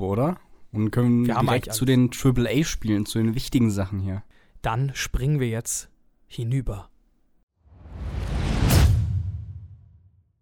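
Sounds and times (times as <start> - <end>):
speech: 0.0 - 6.9
whoosh transition sound effect: 7.6 - 10.4.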